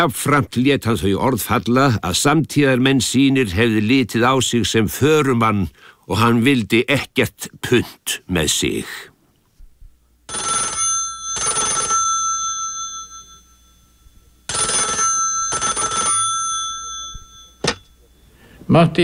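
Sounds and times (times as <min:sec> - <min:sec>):
speech: 0:00.0 - 0:09.1, 0:10.3 - 0:10.7, 0:18.7 - 0:19.0
telephone ringing with bright metallic double rings: 0:10.3 - 0:18.4.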